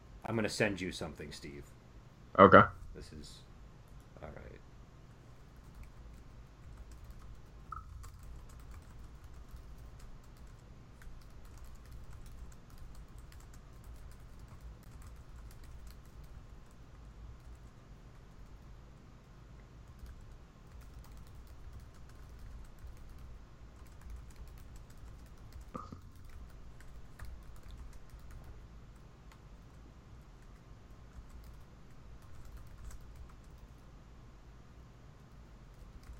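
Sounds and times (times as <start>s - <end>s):
low hum: 0.0s - 36.1s
speech: 0.3s - 1.8s, 2.4s - 3.5s, 4.2s - 4.6s
typing on a computer keyboard: 5.6s - 18.6s, 19.8s - 28.5s, 30.4s - 33.8s, 35.6s - 36.1s.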